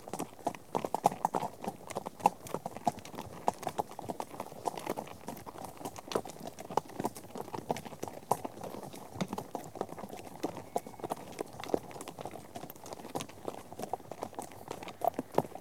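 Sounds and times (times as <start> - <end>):
horse hooves clip-clopping: 0.0 - 15.5.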